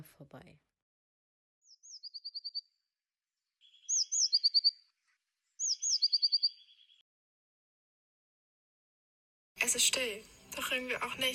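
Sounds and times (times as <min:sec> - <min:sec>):
speech: 0:00.0 - 0:00.7, 0:09.6 - 0:11.3
Eurasian blue tit song: 0:01.6 - 0:02.7, 0:03.6 - 0:04.9, 0:05.6 - 0:07.0.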